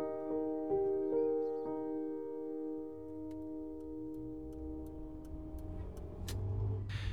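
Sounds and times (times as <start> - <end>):
low road rumble: 0.7 - 7.1
car engine humming on a quiet village street: 2.5 - 7.1
faint ticking clicks: 2.9 - 6.6.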